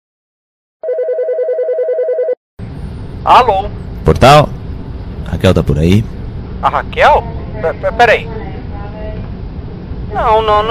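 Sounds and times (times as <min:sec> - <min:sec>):
telephone ringing with a rapid electronic trill: 0:00.8 - 0:02.4
speech: 0:03.2 - 0:04.6, 0:05.3 - 0:08.4, 0:10.1 - 0:10.6.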